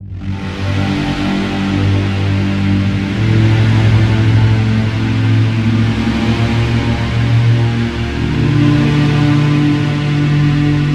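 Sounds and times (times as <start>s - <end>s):
synth pad: 0.0s - 10.9s.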